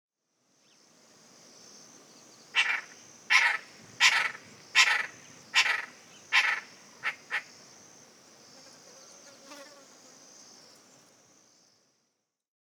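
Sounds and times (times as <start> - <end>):
high insect hiss: 0.2 - 12.4
Lilac-breasted roller giving harsh rasping calls: 2.6 - 7.5.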